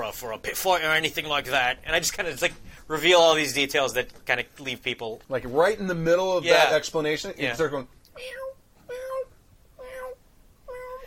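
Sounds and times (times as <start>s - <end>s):
speech: 0.1s - 9.0s
cat meowing: 8.2s - 11.0s.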